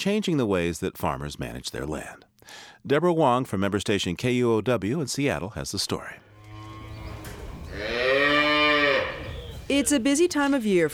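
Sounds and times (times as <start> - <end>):
speech: 0.0 - 6.3, 7.7 - 8.1, 9.7 - 10.9
cow mooing: 6.3 - 9.7.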